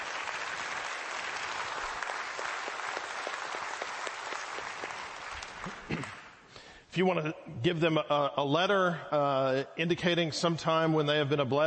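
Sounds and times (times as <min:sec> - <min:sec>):
audience applause: 0:00.0 - 0:06.4
sharper individual claps: 0:00.0 - 0:06.6
speech: 0:06.9 - 0:11.6.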